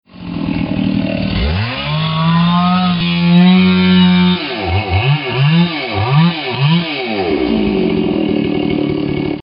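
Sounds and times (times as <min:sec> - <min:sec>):
chainsaw: 0:00.0 - 0:09.4.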